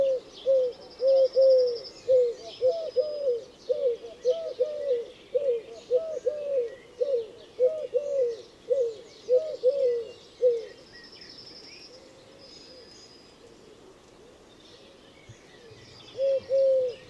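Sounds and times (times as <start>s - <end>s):
Eurasian collared dove Streptopelia decaocto cooing: 0.0s - 10.9s, 15.7s - 17.0s
faint bird chirps: 0.0s - 17.0s.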